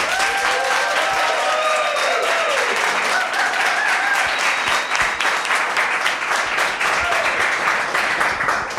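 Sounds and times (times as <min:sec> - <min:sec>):
faint audience cheers: 0:00.0 - 0:05.2, 0:06.9 - 0:07.4
large live audience applauding: 0:00.0 - 0:08.7
whistle-like tones: 0:04.2 - 0:05.6.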